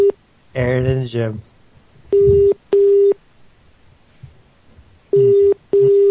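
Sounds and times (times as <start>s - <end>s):
speech: 0.6s - 2.3s
telephone keypad dialing tones: 2.1s - 3.2s, 5.1s - 6.0s.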